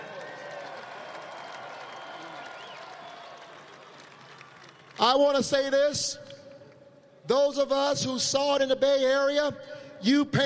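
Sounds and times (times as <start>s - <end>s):
scattered cheers: 0.0s - 4.9s
large crowd clapping: 0.0s - 6.8s
speech: 5.0s - 6.4s, 7.3s - 10.4s.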